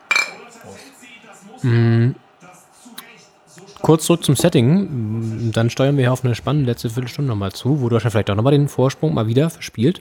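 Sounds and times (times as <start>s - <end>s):
glasses of cola clinking in a toast at a wooden table: 0.0s - 1.0s
speech: 0.6s - 2.2s, 3.9s - 9.9s.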